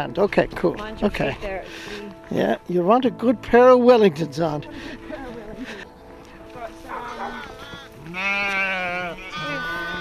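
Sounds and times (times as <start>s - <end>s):
speech: 0.0s - 5.0s
several sheep bleating: 6.9s - 10.0s
higher-pitched lamb-like cry: 7.0s - 10.0s.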